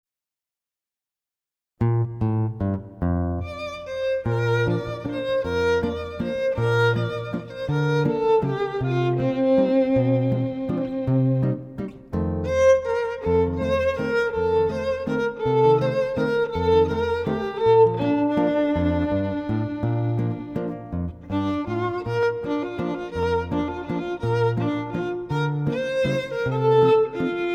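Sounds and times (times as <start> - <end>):
guitar in a duo: 1.8 - 27.5
violin in a duo: 3.4 - 27.5.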